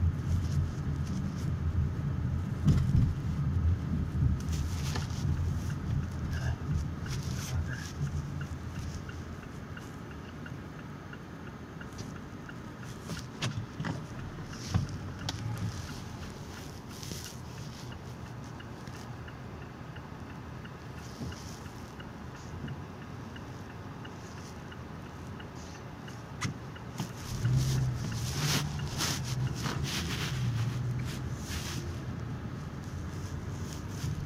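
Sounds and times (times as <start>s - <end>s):
engine and road rumble inside a moving car: 0.0s - 34.2s.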